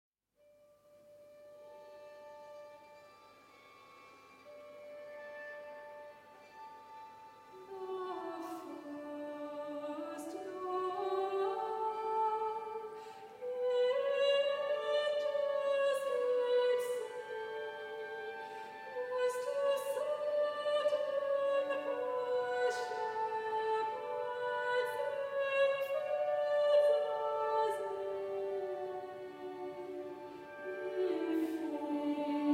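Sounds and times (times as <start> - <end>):
solo cello: 1.2 - 32.5
string section playing: 1.2 - 32.5
choir singing: 7.6 - 32.5.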